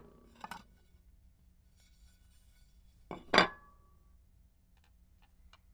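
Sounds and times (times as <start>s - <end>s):
kitchen plates: 3.1s - 3.7s.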